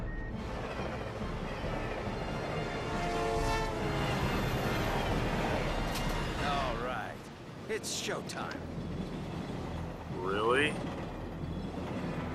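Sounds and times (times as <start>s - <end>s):
train rumbling past: 0.0s - 12.3s
train horn: 1.8s - 6.4s
speech: 7.8s - 8.8s, 10.3s - 11.0s.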